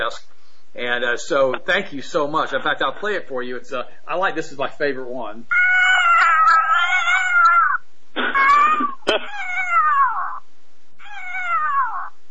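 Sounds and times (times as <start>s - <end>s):
speech: 0.1s - 5.6s
distressed adult cat yowling from predator caller: 5.5s - 10.4s, 11.0s - 12.2s.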